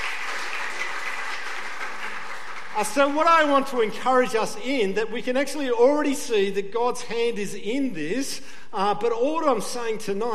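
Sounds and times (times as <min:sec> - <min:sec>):
audience applause from a gathered crowd: 0:00.0 - 0:03.2
speech: 0:02.8 - 0:10.3.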